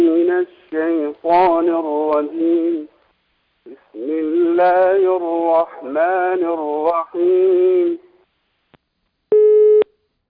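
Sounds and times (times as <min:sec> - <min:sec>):
speech: 0:00.4 - 0:02.9, 0:03.6 - 0:08.0
telephone busy signal after a disconnected line: 0:09.3 - 0:09.9.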